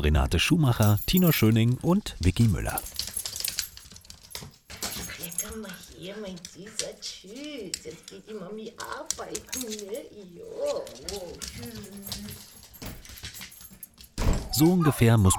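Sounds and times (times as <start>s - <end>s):
speech: 0.0s - 3.0s, 6.1s - 12.6s, 14.6s - 15.3s
keys jangling: 0.8s - 1.7s, 2.3s - 14.6s
dog left home alone whimpering and whining: 9.9s - 12.5s, 14.4s - 15.3s.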